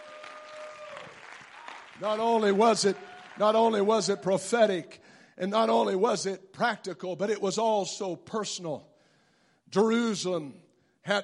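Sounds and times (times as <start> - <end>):
large group of people clapping: 0.0 - 4.2
speech: 2.0 - 8.9, 9.7 - 11.2.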